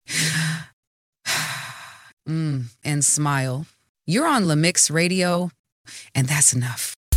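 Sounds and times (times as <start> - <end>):
deep human breath: 0.0 - 2.2
speech: 2.3 - 7.0.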